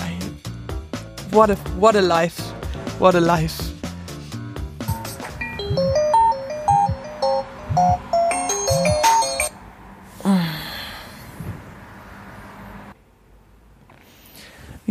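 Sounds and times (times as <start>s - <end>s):
speech: 1.3s - 3.7s
bright electronic alarm clock melody: 4.9s - 9.5s
groggy gasp or sigh: 10.2s - 11.4s.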